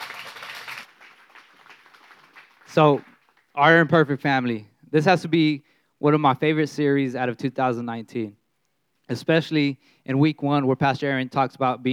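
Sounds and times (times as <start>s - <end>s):
audience applause: 0.0s - 3.5s
speech: 2.8s - 8.4s, 9.1s - 11.9s.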